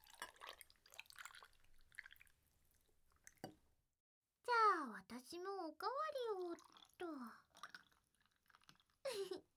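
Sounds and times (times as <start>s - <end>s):
tea poured into a glass with ice: 0.0s - 2.4s, 6.4s - 9.0s
soft drips and ice clinks in a glass: 0.0s - 3.8s, 6.3s - 9.4s
speech: 4.9s - 7.4s.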